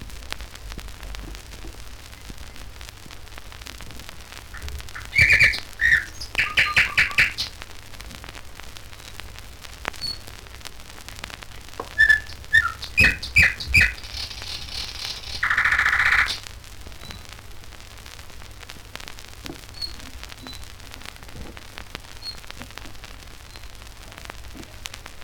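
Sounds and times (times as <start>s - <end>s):
nightingale song: 4.5s - 7.6s, 11.8s - 16.4s.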